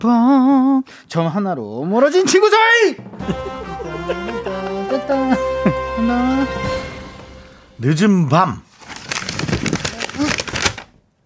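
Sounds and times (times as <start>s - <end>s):
speech: 0.0s - 6.7s, 7.8s - 8.6s
laughter: 3.1s - 6.4s
paper crinkling and rustling: 8.7s - 11.1s.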